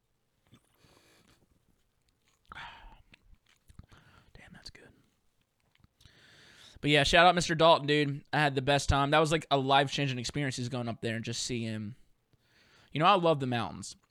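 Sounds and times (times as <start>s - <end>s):
person sipping beer: 0.5s - 4.3s
speech: 6.8s - 12.0s, 12.9s - 14.0s.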